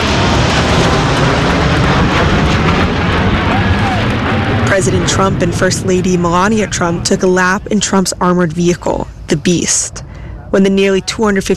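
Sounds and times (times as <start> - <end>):
military jet aircraft roaring low overhead: 0.0 - 11.5
faint crowd noise or voices: 3.5 - 11.5
speech: 4.8 - 11.5.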